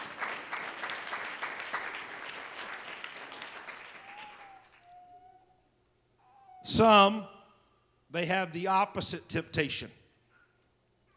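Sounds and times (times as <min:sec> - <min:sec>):
room full of people clapping hands: 0:00.0 - 0:04.9
speech: 0:06.7 - 0:07.3, 0:08.1 - 0:10.0.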